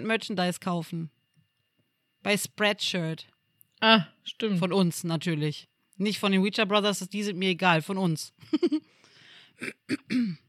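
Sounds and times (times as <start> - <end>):
speech: 0.0 - 1.2, 2.2 - 10.4
person with a slight cold clearing throat: 9.6 - 10.4.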